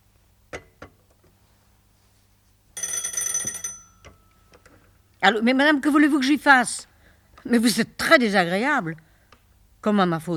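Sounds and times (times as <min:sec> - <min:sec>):
telephone bell ringing on a busy shared line: 0:02.8 - 0:04.6
speech: 0:05.2 - 0:06.9, 0:07.5 - 0:09.1, 0:09.8 - 0:10.3.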